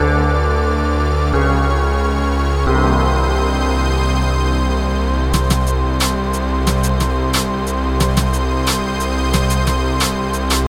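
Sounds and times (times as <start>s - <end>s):
ambient music: 0.0s - 10.6s.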